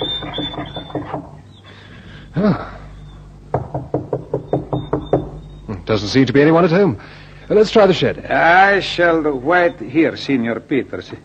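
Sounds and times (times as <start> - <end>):
knocking on a wooden farmhouse door: 0.0 - 1.4, 3.5 - 5.5
speech: 2.4 - 2.7, 5.9 - 11.2.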